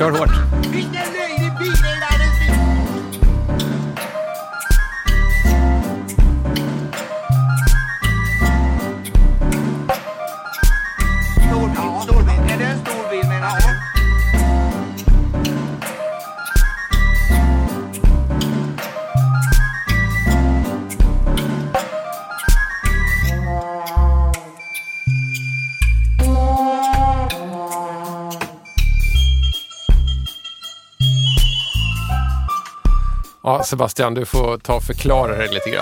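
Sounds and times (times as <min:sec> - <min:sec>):
speech: 0:00.0 - 0:02.1, 0:33.6 - 0:35.8
dubplate reggae track with heavy repeating bass rhythm: 0:00.0 - 0:33.4.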